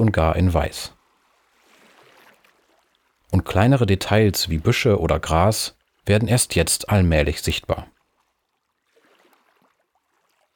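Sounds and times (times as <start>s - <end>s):
speech: 0.0s - 1.0s, 3.3s - 8.0s
small waves gently lapping on shore: 1.0s - 3.2s, 8.0s - 10.5s.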